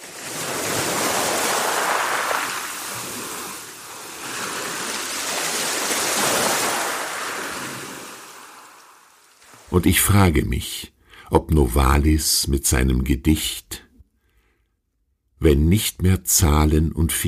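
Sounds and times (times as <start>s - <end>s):
ocean waves rolling onto a sandy beach: 0.0s - 9.7s
speech: 9.8s - 13.8s, 15.4s - 17.2s.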